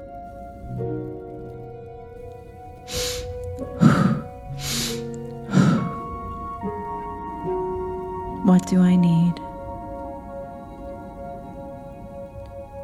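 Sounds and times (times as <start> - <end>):
soft sustained musical drone: 0.0 - 12.8
deep breathing in through the nose and out through the mouth: 2.9 - 6.4
speech: 8.7 - 9.2.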